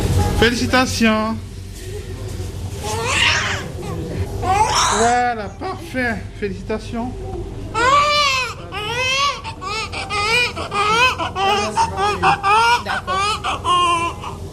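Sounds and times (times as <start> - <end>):
speech: 0.4 - 1.5, 5.0 - 7.9, 11.5 - 14.0
newborn baby crying: 2.8 - 5.4, 7.7 - 14.4.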